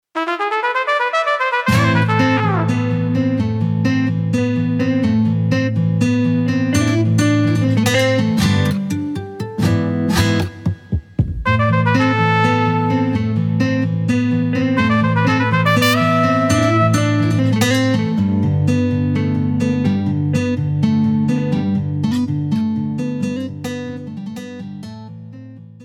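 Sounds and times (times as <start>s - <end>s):
trumpet: 0.2s - 3.1s, 11.5s - 13.2s, 14.8s - 17.4s
guitar: 1.6s - 25.8s.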